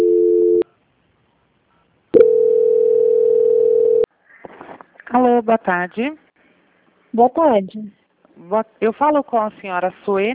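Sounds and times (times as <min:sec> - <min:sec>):
telephone line tones during a call transfer to a bank: 0:00.0 - 0:00.6, 0:02.2 - 0:04.1
speech: 0:05.2 - 0:06.2, 0:07.1 - 0:10.3.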